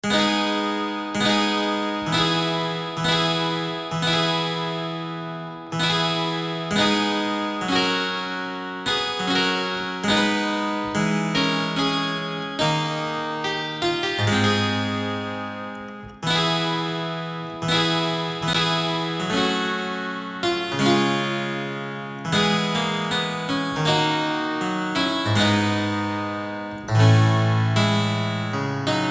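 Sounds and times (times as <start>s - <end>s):
English harpsichord with Nasalzug nasard stop: 0.0s - 29.0s.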